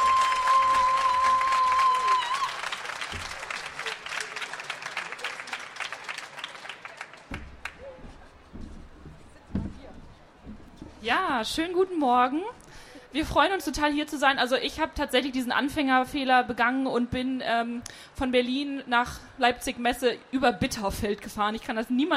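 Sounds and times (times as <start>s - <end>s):
audience applause for two poets: 0.0s - 8.5s
speech: 11.1s - 12.6s, 13.2s - 22.1s.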